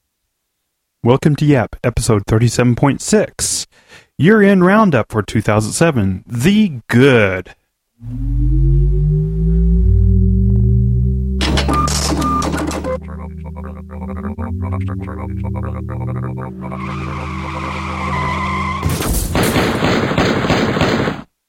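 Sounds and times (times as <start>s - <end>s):
speech: 1.0s - 8.8s, 14.8s - 17.4s
computer droning with mechanical whirring and chattering: 8.0s - 18.1s
gunfire shooting a computer: 19.0s - 21.3s.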